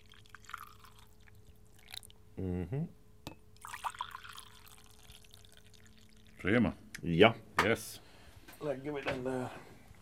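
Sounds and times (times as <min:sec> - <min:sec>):
coffee poured from a thermos into a cup: 0:00.0 - 0:02.2, 0:03.6 - 0:06.4
speech: 0:02.4 - 0:03.0, 0:06.4 - 0:08.0, 0:08.6 - 0:09.7.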